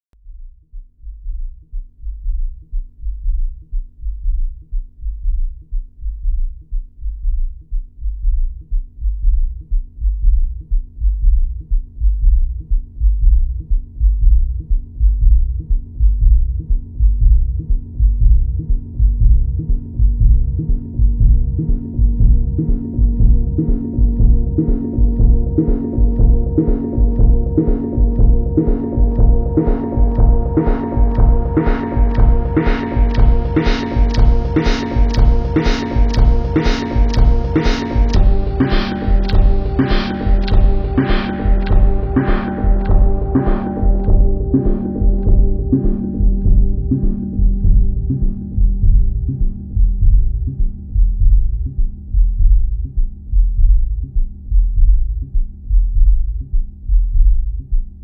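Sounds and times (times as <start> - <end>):
Akai S3000XL sampler low end tones: 0.0 - 58.0.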